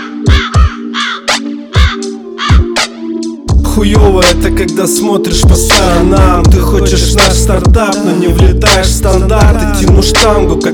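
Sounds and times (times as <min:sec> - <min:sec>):
crow cawing: 0:00.0 - 0:02.8
steady musical beat with deep thumping kicks: 0:00.0 - 0:10.7
speech: 0:03.8 - 0:10.7.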